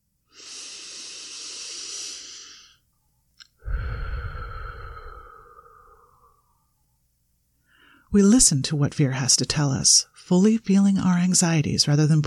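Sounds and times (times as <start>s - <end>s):
deep breathing: 0.3s - 2.8s, 3.5s - 6.7s
speech: 8.1s - 12.2s.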